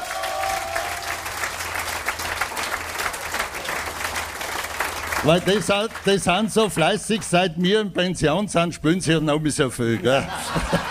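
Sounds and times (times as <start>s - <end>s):
audience applause for stage performers at a live show: 0.0s - 7.4s
speech: 5.2s - 10.8s
laughter: 9.8s - 10.8s.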